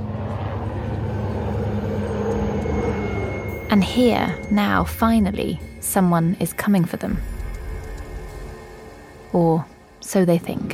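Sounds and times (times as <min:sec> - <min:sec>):
large helicopters engine and rotor noise: 0:00.0 - 0:10.7
speech: 0:03.7 - 0:07.3, 0:09.3 - 0:10.7.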